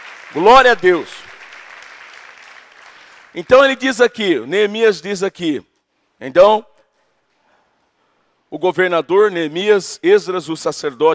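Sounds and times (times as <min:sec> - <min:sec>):
church audience applauding: 0:00.0 - 0:03.5
speech: 0:00.3 - 0:01.2, 0:03.4 - 0:06.7, 0:08.5 - 0:11.1.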